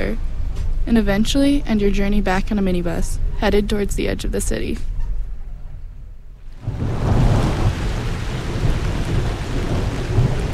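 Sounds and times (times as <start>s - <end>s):
speech: 0.0s - 0.3s, 0.9s - 4.9s
low thunder-like rumble: 0.0s - 10.5s
steady dense summer rainfall: 6.4s - 10.5s.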